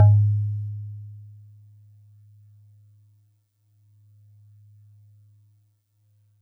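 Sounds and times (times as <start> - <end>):
DX100 celeste note G#1: 0.0 - 0.5.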